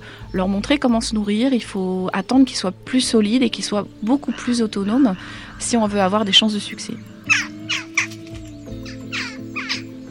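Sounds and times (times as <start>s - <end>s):
speech: 0.3s - 7.5s
crows cawing: 4.0s - 10.0s.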